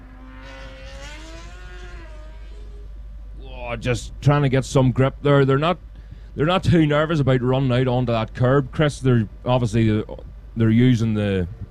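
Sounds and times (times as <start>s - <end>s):
racing engines whining accelerating out of a corner on a race circuit: 0.0s - 4.8s
speech: 3.7s - 11.7s.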